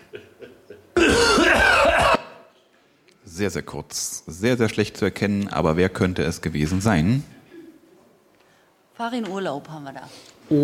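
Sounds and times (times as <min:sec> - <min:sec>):
rasping throat-clearing cough: 0:00.0 - 0:02.5
speech: 0:03.4 - 0:07.4, 0:09.0 - 0:10.6
soft breathing: 0:08.3 - 0:08.8.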